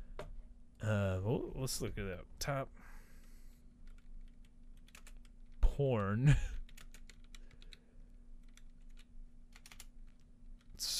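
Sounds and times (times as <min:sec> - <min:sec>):
speech: 0:00.8 - 0:03.0, 0:05.8 - 0:06.5
rapid typing on a computer keyboard: 0:03.8 - 0:05.6, 0:06.6 - 0:07.8, 0:08.4 - 0:10.7.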